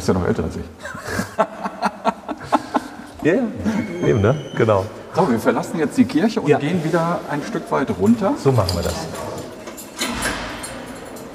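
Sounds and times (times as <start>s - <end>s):
speech: 0.0s - 1.7s, 3.2s - 9.2s
steady hum: 0.0s - 11.3s
laughter: 0.8s - 4.4s
heavy metal prison door opening with clank and scraping rattle: 8.1s - 11.3s.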